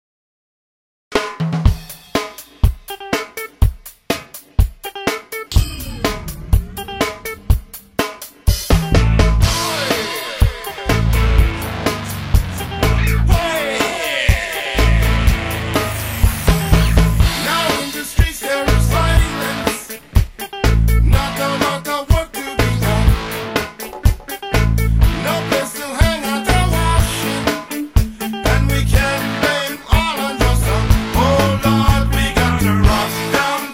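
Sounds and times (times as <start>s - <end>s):
reggae band playing: 1.2s - 33.7s.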